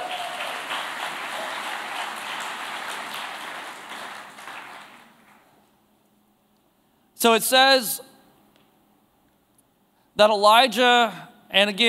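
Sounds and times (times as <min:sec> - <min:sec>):
crowd applauding: 0:00.0 - 0:05.6
speech: 0:07.2 - 0:08.1, 0:10.2 - 0:11.8.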